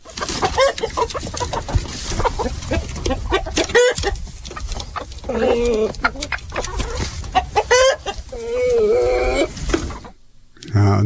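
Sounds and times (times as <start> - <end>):
flock of chickens clucking coming out of coop: 0.0 - 10.2.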